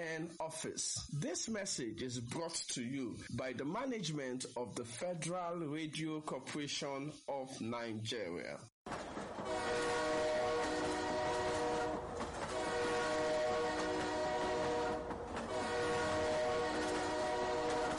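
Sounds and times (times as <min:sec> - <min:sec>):
speech: 0:00.0 - 0:08.7
train horn blasts: 0:09.4 - 0:17.9.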